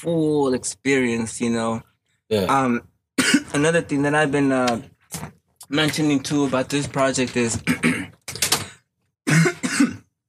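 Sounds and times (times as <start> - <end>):
speech: 0.0 - 2.9, 3.5 - 8.2
person coughing harshly: 3.2 - 3.5, 7.6 - 8.2, 9.2 - 10.2.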